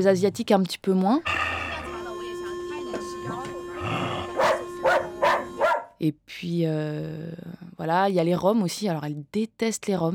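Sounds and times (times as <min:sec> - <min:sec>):
speech: 0:00.0 - 0:01.5, 0:06.0 - 0:10.1
steady humming tone: 0:01.7 - 0:05.7
dog barking at people: 0:04.3 - 0:06.0.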